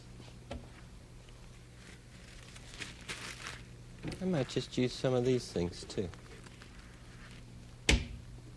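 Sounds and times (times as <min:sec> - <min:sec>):
tissue paper crinkling as it is handled to make a comb kazoo: 0:01.4 - 0:07.6
speech: 0:04.2 - 0:06.2.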